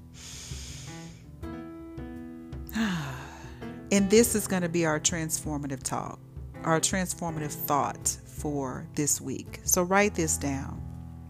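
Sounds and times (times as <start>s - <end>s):
deep breath: 0.0s - 1.4s, 2.7s - 3.8s
speech: 3.9s - 10.9s.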